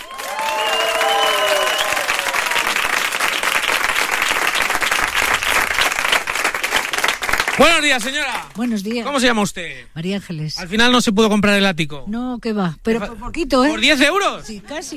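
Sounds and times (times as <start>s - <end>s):
large crowd applauding: 0.0s - 8.8s
speech: 7.6s - 14.9s.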